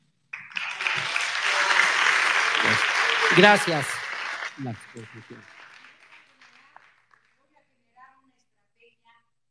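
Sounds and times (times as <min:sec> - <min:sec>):
audience applause: 0:00.4 - 0:07.2
speech: 0:03.4 - 0:04.0, 0:04.6 - 0:05.6.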